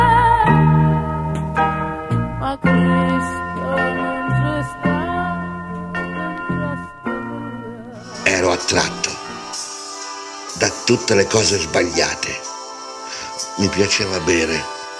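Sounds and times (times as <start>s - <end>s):
church bell ringing: 0.6s - 13.0s
person singing: 2.4s - 9.7s, 10.5s - 14.9s
speech: 10.9s - 12.5s, 13.6s - 14.8s.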